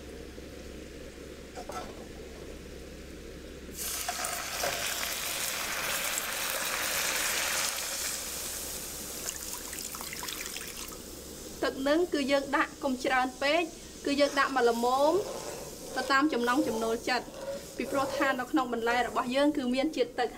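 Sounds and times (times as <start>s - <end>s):
speech: 1.6s - 2.2s, 11.7s - 15.4s, 16.0s - 20.3s
sugar caramelizing and sizzling in a pan: 3.7s - 20.3s.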